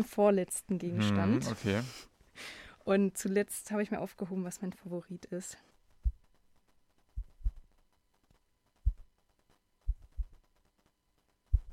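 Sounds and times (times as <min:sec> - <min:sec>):
speech: 0:00.0 - 0:05.7
taut microfiber cloth plucked with soft low thumps: 0:07.1 - 0:07.7, 0:08.8 - 0:09.1, 0:09.9 - 0:10.4, 0:11.5 - 0:11.7.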